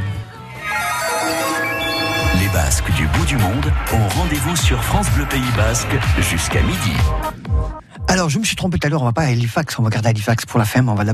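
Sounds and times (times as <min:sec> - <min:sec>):
melodic phone ringtone for incoming call: 0:00.6 - 0:03.3
speech: 0:02.9 - 0:07.4, 0:08.1 - 0:11.1.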